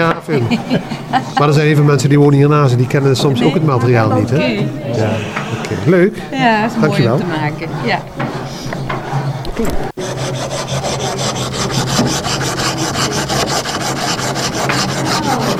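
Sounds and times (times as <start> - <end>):
speech: 0.0 - 8.8
laughter: 0.0 - 15.5
saw cutting a block of marl stone straight: 4.9 - 15.5.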